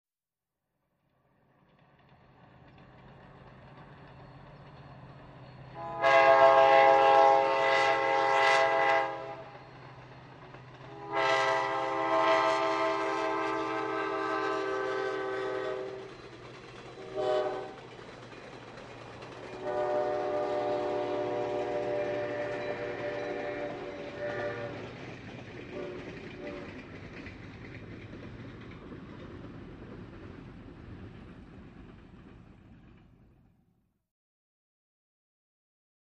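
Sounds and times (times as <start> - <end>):
train passing by at medium distance: 1.4 - 33.6.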